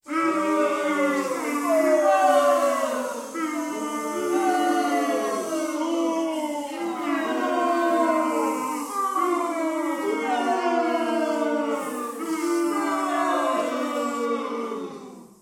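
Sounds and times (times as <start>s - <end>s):
crowd booing a field goal: 0.0s - 15.3s.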